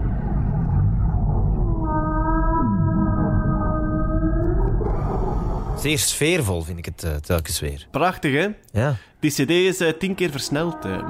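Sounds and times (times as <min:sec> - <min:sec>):
sped-up whale call with rich harmonic tone: 0:00.0 - 0:05.8
deep underwater rumble: 0:00.0 - 0:05.9
speech: 0:05.8 - 0:11.0.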